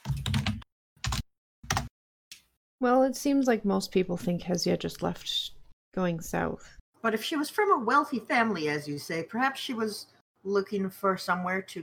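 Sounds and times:
typing on a computer keyboard: 0.0s - 1.9s
speech: 2.8s - 11.8s.

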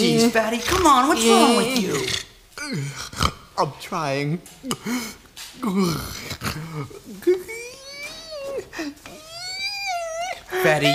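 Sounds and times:
speech: 0.0s - 7.6s, 10.5s - 10.9s
person groaning with wavering rising pitch: 5.6s - 10.9s.

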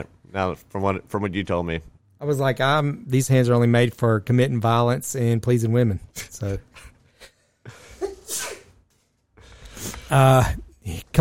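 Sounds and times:
speech: 0.0s - 6.9s, 10.1s - 11.1s
quick breath intake: 9.4s - 10.1s.

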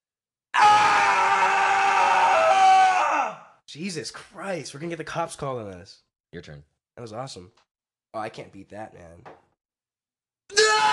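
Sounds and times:
loud sustained human scream: 0.5s - 3.6s, 10.5s - 10.9s
speech: 3.7s - 9.4s.

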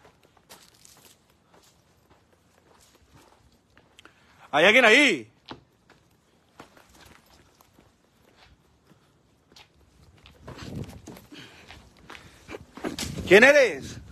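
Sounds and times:
person running footsteps on ground in a cemetery: 0.0s - 14.1s
speech: 4.5s - 5.3s, 13.3s - 14.0s.

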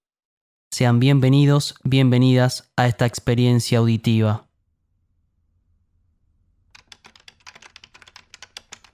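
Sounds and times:
speech: 0.8s - 4.5s
rapid typing on a computer keyboard: 6.7s - 8.9s.

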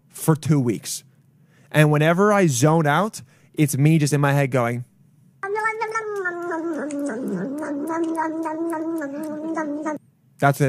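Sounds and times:
speech: 0.2s - 1.1s, 1.7s - 4.9s, 7.2s - 10.6s
person imitating a yowling cat: 5.4s - 10.0s.

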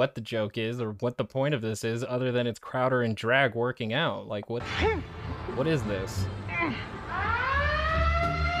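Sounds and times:
speech: 0.0s - 7.0s
gym alarm siren set off by dropped weights: 6.6s - 8.5s.

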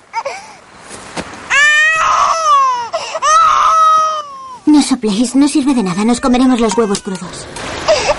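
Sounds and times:
baby crying on the grass outdoors beside a cooking fire: 1.5s - 4.6s, 5.9s - 8.1s
speech: 4.8s - 7.6s.

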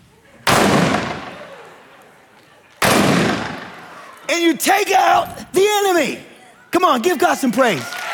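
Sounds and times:
cannon blasts: 0.5s - 1.4s, 2.8s - 3.8s
speech: 4.3s - 8.0s.

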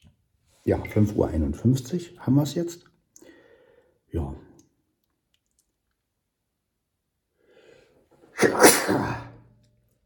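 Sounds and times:
speech: 0.6s - 2.9s, 4.1s - 4.5s
person sneezing: 8.4s - 9.4s.

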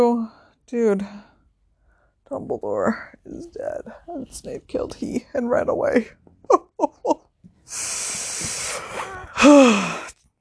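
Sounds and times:
speech: 0.0s - 1.3s, 2.3s - 10.1s
wheezing breath from someone with asthma: 7.7s - 10.2s.

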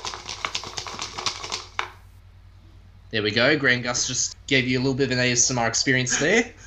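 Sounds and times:
cut-up paper slips with topics shuffled in a bowl: 0.0s - 2.0s
speech: 3.1s - 6.6s.

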